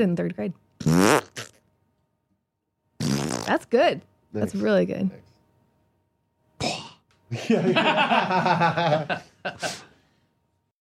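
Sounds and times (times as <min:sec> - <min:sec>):
speech: 0:00.0 - 0:01.2, 0:03.5 - 0:05.3, 0:07.3 - 0:09.9
person imitating a fart with the mouth: 0:00.8 - 0:01.7, 0:03.0 - 0:03.7
laughter: 0:07.3 - 0:09.8.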